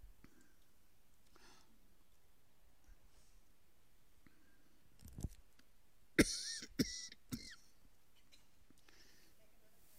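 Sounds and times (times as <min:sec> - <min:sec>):
person coughing from a throat tickle: 0:06.2 - 0:07.7.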